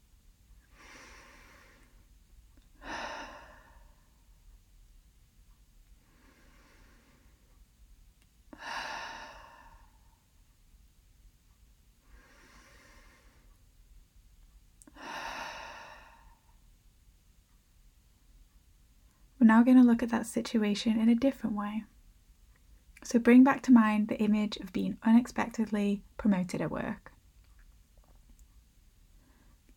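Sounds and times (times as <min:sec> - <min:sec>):
slow deep breathing during a guided relaxation exercise: 0:00.6 - 0:04.4, 0:06.0 - 0:07.6, 0:08.5 - 0:10.3, 0:12.0 - 0:13.6, 0:14.9 - 0:16.6
speech: 0:19.4 - 0:21.9, 0:23.0 - 0:27.1.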